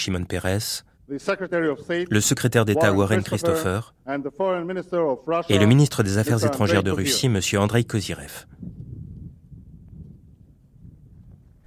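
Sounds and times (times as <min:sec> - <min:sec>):
speech: 0:00.0 - 0:08.8
wind buffeting the microphone outdoors at a ceremony: 0:08.4 - 0:11.6.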